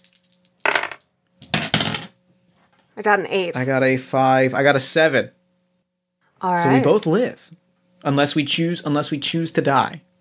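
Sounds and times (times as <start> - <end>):
dice clattering across a hard tabletop: 0.0 - 2.1
speech: 3.0 - 5.4, 6.4 - 10.1.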